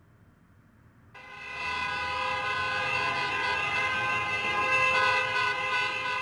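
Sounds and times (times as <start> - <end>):
car horns blaring on Via Veneto in Rome after a football victory: 1.2 - 6.1
dense rumble of traffic: 1.2 - 6.1.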